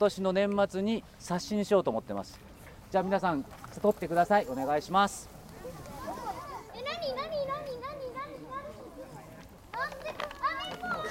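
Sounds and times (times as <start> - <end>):
speech: 0.0 - 5.3
young children chattering and calling out: 2.4 - 11.0.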